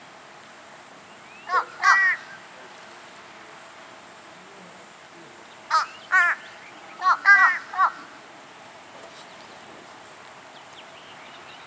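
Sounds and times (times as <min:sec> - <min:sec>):
fish crow giving hoarse nasal caw notes: 0:01.5 - 0:02.4, 0:05.7 - 0:08.2.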